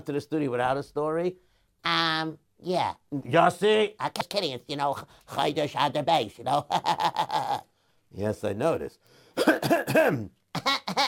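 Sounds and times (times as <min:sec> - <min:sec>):
speech: 0:00.0 - 0:11.0
person clearing throat: 0:09.4 - 0:10.4.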